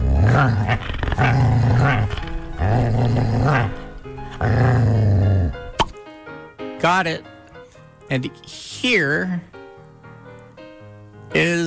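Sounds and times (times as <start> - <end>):
playful puppy growling: 0.0 - 5.8
speech: 0.4 - 3.8, 4.4 - 5.1, 6.8 - 7.3, 8.1 - 9.5, 11.3 - 11.6
sharp click: 5.8 - 6.0.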